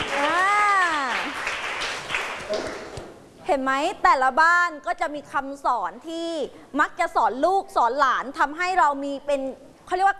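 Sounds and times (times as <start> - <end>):
group of children applauding: 0.0 - 2.9
speech: 3.5 - 10.1.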